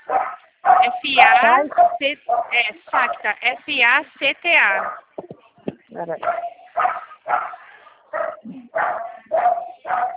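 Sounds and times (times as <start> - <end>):
dog barking: 0.0 - 3.3, 4.7 - 5.1, 6.2 - 10.1
speech: 1.0 - 5.0, 6.0 - 7.0.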